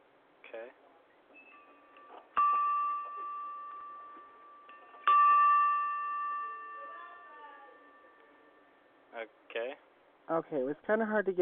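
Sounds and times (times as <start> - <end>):
doorbell ringing with a bright clear chime: 1.4 - 8.9
speech: 9.2 - 11.4.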